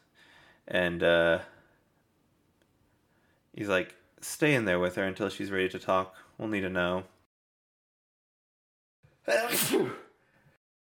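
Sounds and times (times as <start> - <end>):
speech: 0.7 - 1.6, 3.6 - 7.1, 9.3 - 10.0
person sneezing: 9.3 - 10.2.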